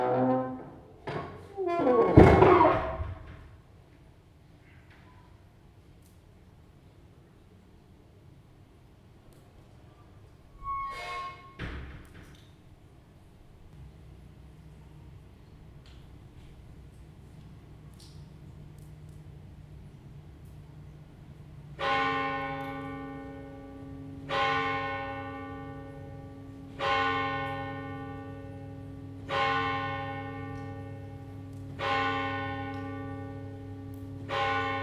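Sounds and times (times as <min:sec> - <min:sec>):
Roncesvalles church door: 0:00.2 - 0:03.5
Roncesvalles church bells: 0:21.4 - 0:34.8.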